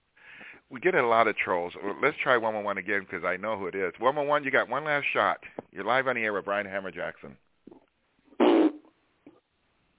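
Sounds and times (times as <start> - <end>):
speech: 0.7 - 7.4
raspy mouth fart blown by a caller: 7.7 - 9.4.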